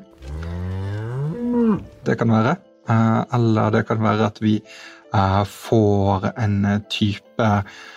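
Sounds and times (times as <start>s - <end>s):
cow mooing: 0.2s - 2.1s
speech: 2.0s - 7.9s.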